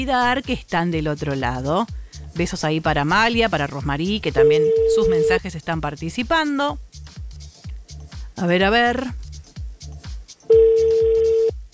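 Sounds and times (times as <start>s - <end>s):
speech: 0.0s - 7.0s, 8.4s - 9.2s
pulsing low beat of music: 0.0s - 11.7s
phone ringing tone as a call is placed: 4.4s - 5.4s, 10.5s - 11.6s.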